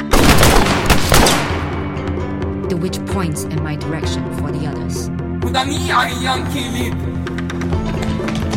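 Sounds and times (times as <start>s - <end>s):
loud gunfire: 0.1s - 1.8s
speech: 2.7s - 8.5s.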